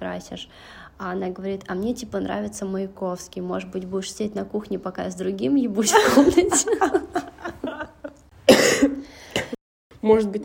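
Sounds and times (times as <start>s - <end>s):
speech: 0.0s - 7.3s, 10.1s - 10.4s
laughter: 5.9s - 8.2s
person coughing harshly: 8.4s - 9.6s
person clearing throat: 8.5s - 9.6s.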